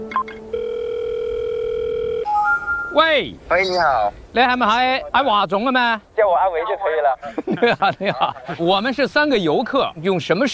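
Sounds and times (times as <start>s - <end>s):
telephone dial tone while placing a call: 0.1s - 2.3s
speech: 2.9s - 10.5s
laughter: 7.2s - 8.8s.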